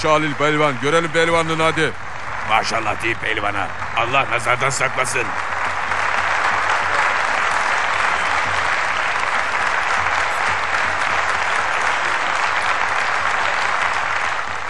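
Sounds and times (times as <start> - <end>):
speech: 0.0 - 5.5
large crowd of townspeople in Soğanlı applauding to greet a wrestler: 0.0 - 14.6.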